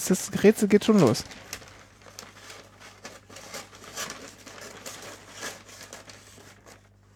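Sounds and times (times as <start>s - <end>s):
speech: 0.0s - 1.6s
thin paper being folded and cut: 0.3s - 7.1s.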